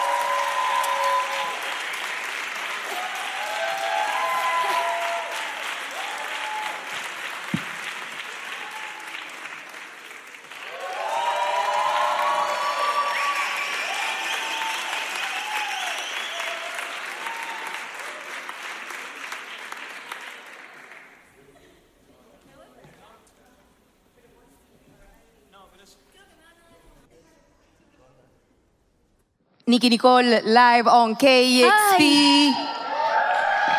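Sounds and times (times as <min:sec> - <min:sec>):
audience applause at a live music performance: 0:00.0 - 0:21.5, 0:31.7 - 0:33.7
speech: 0:29.7 - 0:32.6.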